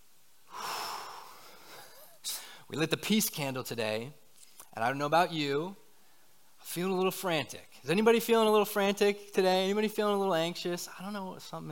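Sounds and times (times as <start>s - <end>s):
group of people taking a deep breath together at a gathering: 0.5s - 2.7s
speech: 2.7s - 4.2s, 4.8s - 5.8s, 6.6s - 11.6s.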